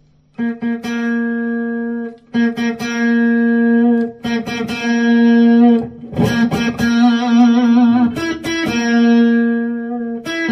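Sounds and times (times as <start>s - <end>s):
electric guitar picked notes with the volume knob turned up: 0.0s - 10.5s.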